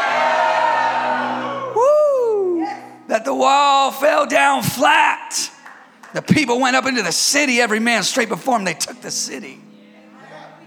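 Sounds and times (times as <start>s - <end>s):
large audience roaring in a sustained shout: 0.0s - 1.8s
single person whooping: 1.7s - 3.0s
speech: 3.4s - 5.5s, 6.1s - 9.7s.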